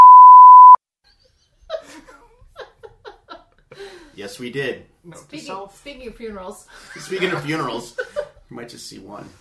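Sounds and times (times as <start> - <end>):
loud steady censor bleep tone: 0.0 - 0.8
speech: 4.2 - 9.3
laughter: 6.8 - 8.4.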